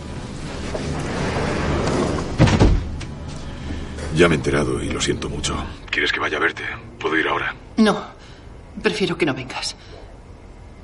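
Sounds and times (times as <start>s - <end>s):
steady low hiss: 0.0s - 10.8s
glass-walled office door swinging shut: 0.6s - 3.1s
speech: 4.2s - 8.2s, 8.8s - 10.0s.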